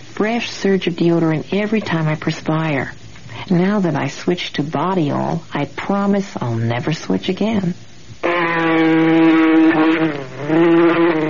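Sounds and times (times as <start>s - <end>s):
speech: 0.2s - 10.6s
mosquito buzzing with a whiny wavering tone: 8.2s - 11.2s.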